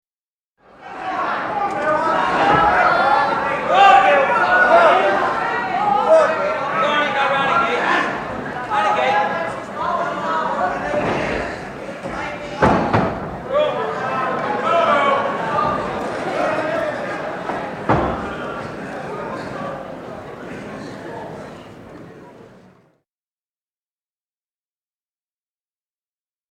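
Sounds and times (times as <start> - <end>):
crowd shouting encouragement: 0.6 - 19.8.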